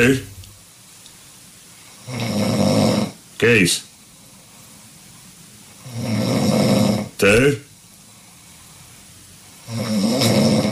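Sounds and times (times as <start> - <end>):
speech: 0.0 - 0.3, 3.4 - 3.9, 7.2 - 7.7
man calling out: 0.0 - 0.4, 3.4 - 3.9, 7.2 - 7.7
man snoring loudly in rough rasping breaths: 2.0 - 3.2, 5.8 - 7.5, 9.6 - 10.7.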